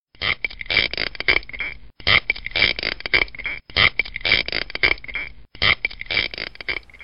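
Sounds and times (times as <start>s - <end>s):
spiny lobster rasping underwater: 0.2s - 7.0s.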